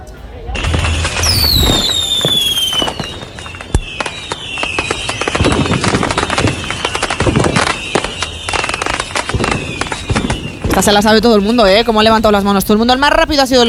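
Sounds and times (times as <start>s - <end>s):
fireworks bursting and crackling: 0.1s - 13.6s
fireworks whistling: 0.4s - 12.5s
speech: 10.8s - 13.6s.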